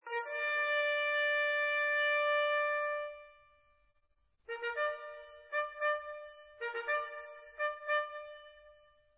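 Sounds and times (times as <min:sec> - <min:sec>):
cornet part playing: 0:00.0 - 0:03.4, 0:04.5 - 0:08.9.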